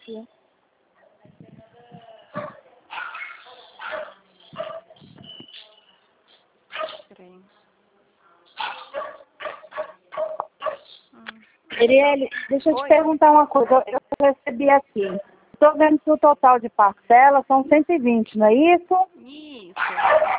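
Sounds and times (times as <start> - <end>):
speech: 0.1 - 0.4, 11.8 - 20.3
dog barking outside in sharp yaps: 2.3 - 5.0, 6.7 - 7.1, 8.6 - 10.9, 19.8 - 20.3.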